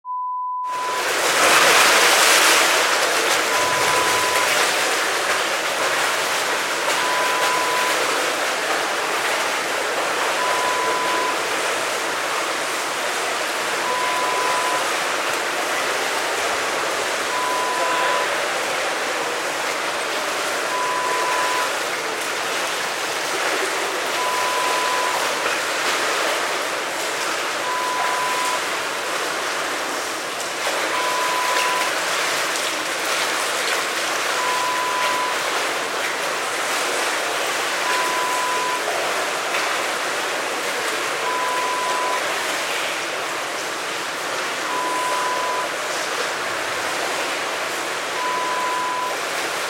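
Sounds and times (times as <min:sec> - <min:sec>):
swimming pool: 0:00.0 - 0:49.6.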